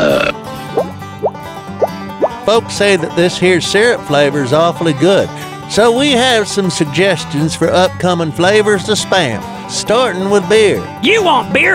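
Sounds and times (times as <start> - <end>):
loud rough bubbly burps: 0.0 - 1.3
speech: 2.5 - 11.7.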